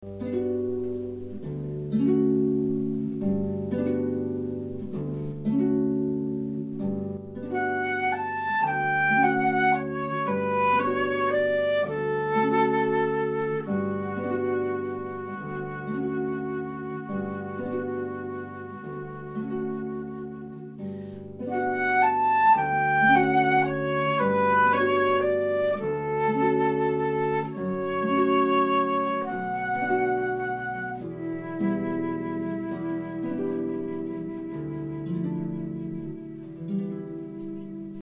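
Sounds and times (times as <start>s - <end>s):
harp and flute piece: 0.0s - 38.0s.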